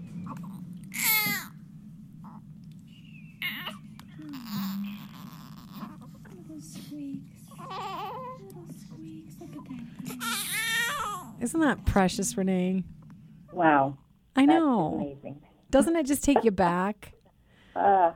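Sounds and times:
low steady hum: 0:00.0 - 0:18.1
newborn baby cooing and babbling: 0:00.3 - 0:01.5, 0:03.4 - 0:06.4, 0:07.5 - 0:08.5, 0:10.1 - 0:11.4
speech: 0:11.4 - 0:13.0, 0:13.6 - 0:17.2, 0:17.8 - 0:18.1.

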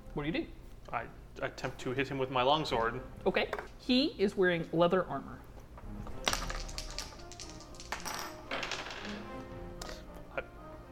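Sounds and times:
speech: 0:00.2 - 0:05.5
dice clattering across a hard tabletop: 0:06.2 - 0:09.2.

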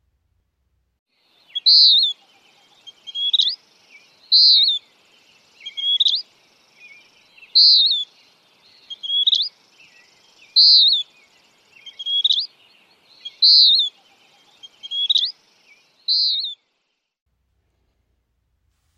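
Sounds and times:
Western Wood-Pewee calls: 0:01.5 - 0:03.6, 0:04.3 - 0:04.8, 0:05.6 - 0:06.2, 0:07.4 - 0:08.2, 0:08.8 - 0:11.1, 0:11.8 - 0:12.5, 0:13.2 - 0:15.4, 0:16.1 - 0:16.6.

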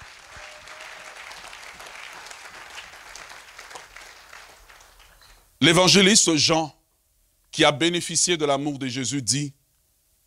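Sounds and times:
church congregation applauding during a sermon: 0:00.0 - 0:05.5
speech: 0:05.6 - 0:06.8, 0:07.6 - 0:09.6.

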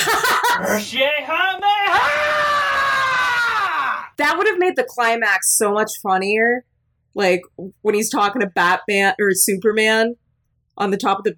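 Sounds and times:
laughter: 0:00.0 - 0:00.9
speech: 0:00.7 - 0:02.2, 0:04.2 - 0:10.2, 0:10.8 - 0:11.3
person letting out a wavering cursing yeehaw yell and strained scream: 0:01.6 - 0:04.1.

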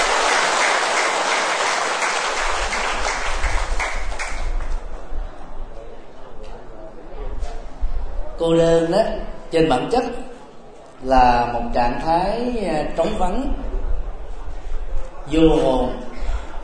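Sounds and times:
crowd applauding the benefactors of a program: 0:00.0 - 0:04.9
speech: 0:08.4 - 0:10.2, 0:11.0 - 0:13.6, 0:15.3 - 0:16.1.

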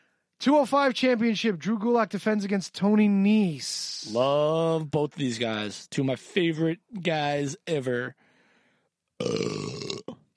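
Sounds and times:
speech: 0:00.4 - 0:08.2, 0:09.2 - 0:09.7
loud drawn-out burp: 0:09.2 - 0:10.3.

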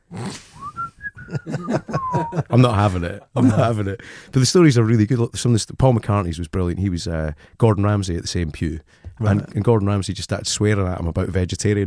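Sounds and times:
person whistling a tune: 0:00.6 - 0:02.5
laughter: 0:01.2 - 0:04.0
speech: 0:02.6 - 0:11.8
breathy rumbling: 0:04.0 - 0:04.4.

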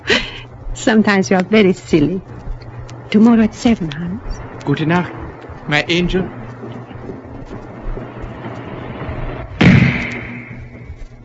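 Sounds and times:
low dull rumble: 0:00.0 - 0:11.2
speech: 0:00.8 - 0:02.5, 0:03.1 - 0:06.4
sniper rifle shot: 0:09.5 - 0:10.8.

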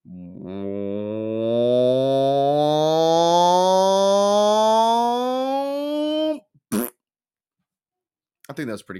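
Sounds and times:
voice imitating echoey fart build-up with the mouth: 0:00.1 - 0:07.0.

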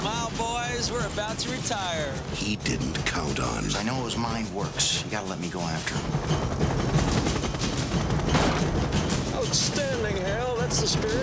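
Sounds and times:
sustained rapid gunfire near thermonuclear warheads: 0:00.0 - 0:11.2
speech: 0:00.8 - 0:07.1, 0:09.5 - 0:11.2.

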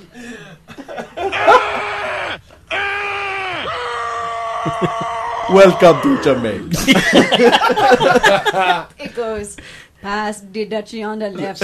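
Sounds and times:
laughter: 0:00.7 - 0:02.4, 0:04.4 - 0:09.2
man screaming: 0:01.2 - 0:06.7
speech: 0:04.6 - 0:11.6.

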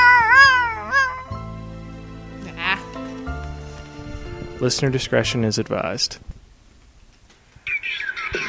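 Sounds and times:
cat meowing: 0:00.0 - 0:01.3
steady low hum: 0:00.0 - 0:08.4
speech: 0:04.6 - 0:06.3.

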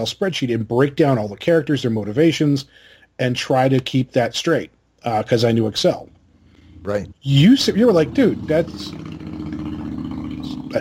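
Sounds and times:
speech: 0:00.0 - 0:06.1, 0:06.8 - 0:09.2
motorcycle engine idling: 0:07.6 - 0:10.8.

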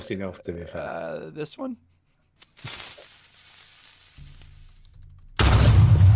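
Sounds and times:
speech: 0:00.0 - 0:02.8
sound-effect explosion blast decaying into a low rumble: 0:05.4 - 0:06.1.

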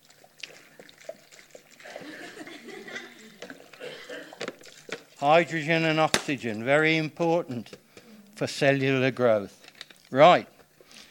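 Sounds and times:
water pouring into a bucket: 0:00.0 - 0:06.6
people chuckling: 0:01.8 - 0:04.5
speech: 0:05.2 - 0:07.8, 0:08.4 - 0:10.5
soft voices: 0:07.9 - 0:08.5.

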